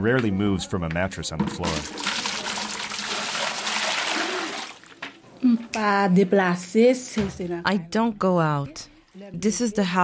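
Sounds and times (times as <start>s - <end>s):
speech: 0.0s - 2.2s, 5.8s - 10.0s
water sloshing and pouring from a cistern: 1.5s - 5.1s.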